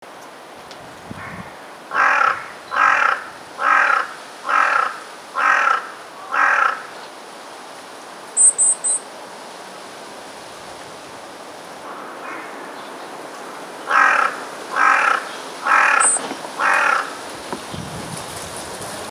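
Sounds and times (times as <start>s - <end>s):
Corvus corone calling: 1.2s - 7.0s, 11.8s - 13.0s, 13.8s - 17.3s.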